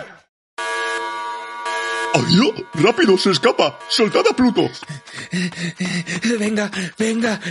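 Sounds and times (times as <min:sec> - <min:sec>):
brassy horn blaring: 0:00.6 - 0:04.9
speech: 0:02.2 - 0:07.4.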